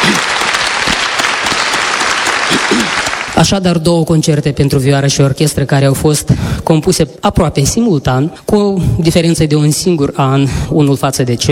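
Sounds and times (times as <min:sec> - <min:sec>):
dense audience applause for a violin teacher: 0:00.0 - 0:03.4
speech: 0:03.4 - 0:11.5.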